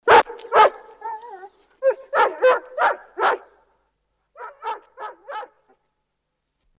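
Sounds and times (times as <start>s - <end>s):
German shepherd dog: 0.1s - 3.5s, 4.4s - 5.7s.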